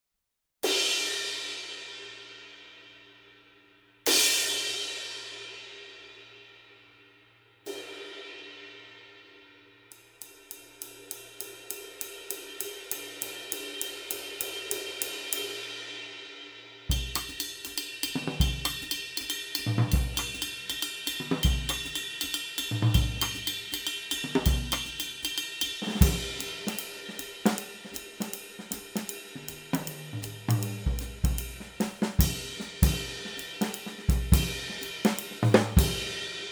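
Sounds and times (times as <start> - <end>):
Sabian 22-inch cymbal: 0.6 - 36.4.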